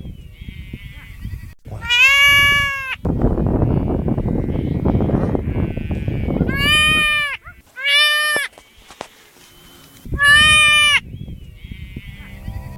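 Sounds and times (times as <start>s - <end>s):
deformed sheep making strange strained bleats: 0.4s - 8.5s, 10.2s - 11.0s, 11.6s - 12.7s.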